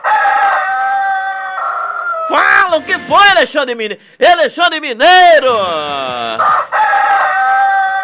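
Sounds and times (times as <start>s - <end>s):
rooster crowing: 0.0s - 2.3s, 6.4s - 8.0s
speech: 2.3s - 6.8s.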